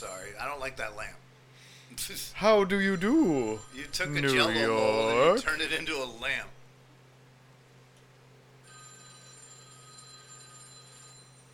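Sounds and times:
speech: 0.0 - 1.2, 1.9 - 6.6
low hum: 0.0 - 11.5
telephone ringing with electronic tone: 2.8 - 5.4, 8.6 - 11.5.

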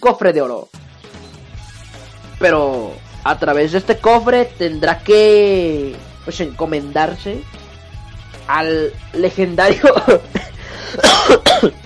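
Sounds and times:
speech: 0.0 - 0.8, 2.4 - 7.6, 8.5 - 11.8
person coughing: 9.7 - 11.8.

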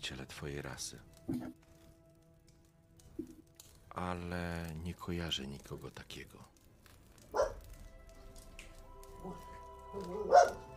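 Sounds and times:
speech: 0.0 - 1.7, 4.0 - 6.5, 9.2 - 10.6
dog barking: 7.3 - 7.7, 10.0 - 10.7.

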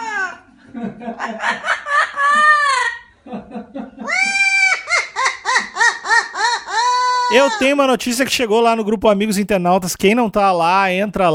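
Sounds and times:
laughter: 0.6 - 7.8
speech: 0.7 - 1.8, 7.3 - 11.3
parrot squawking: 4.1 - 7.7.

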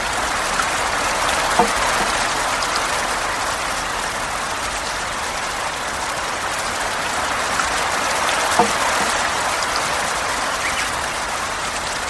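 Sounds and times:
steady dense rain in a garden: 0.0 - 12.0
sharp drips or taps: 1.5 - 2.2, 8.5 - 9.2.

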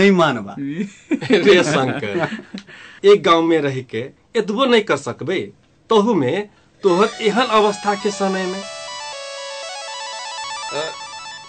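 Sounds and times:
speech: 0.0 - 8.8
phone ringtone electronic melody for an incoming call: 6.8 - 11.4.

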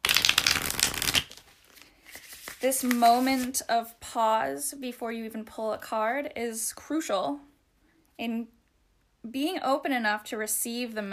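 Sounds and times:
deck of tarot cards being shuffled: 0.0 - 3.7
speech: 2.6 - 7.5, 8.2 - 8.6, 9.2 - 11.1.

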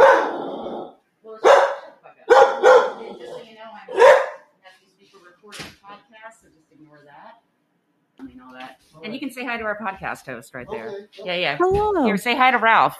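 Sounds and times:
dog barking loudly: 0.0 - 0.7, 1.4 - 4.5
speech: 6.3 - 7.5, 8.2 - 12.9.

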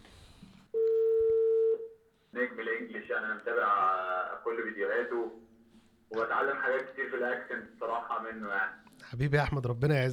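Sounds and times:
steady telephone tone for incoming call: 0.7 - 2.0
speech: 3.2 - 5.4, 6.1 - 10.1.

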